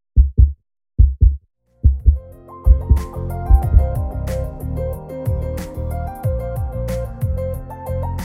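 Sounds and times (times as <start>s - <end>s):
deep, thudding heartbeat in paired lub-dub beats: 0.2s - 4.1s
music: 1.9s - 8.2s.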